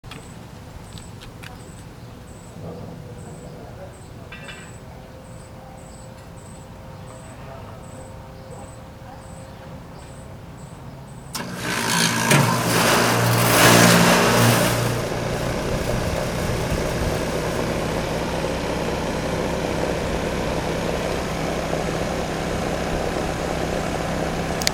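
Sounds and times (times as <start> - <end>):
air conditioner noise: 11.3 - 24.7.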